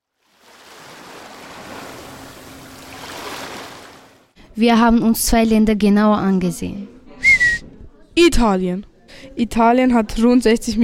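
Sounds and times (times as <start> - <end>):
sea waves breaking on a shore: 0.0 - 4.4
speech: 4.6 - 7.0, 8.2 - 10.8.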